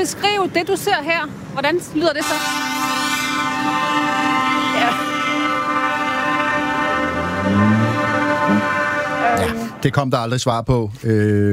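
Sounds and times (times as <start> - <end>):
speech: 0.0 - 2.8, 9.4 - 11.5
tractor engine noise rumbling: 0.0 - 11.5
horns of tractors honking at a farmers' demonstration outside Christiansborg: 2.0 - 9.9.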